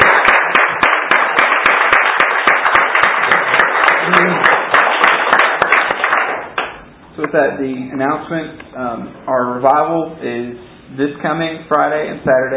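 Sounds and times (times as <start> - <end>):
audience clapping: 0.0 - 6.9
speech: 7.3 - 12.5.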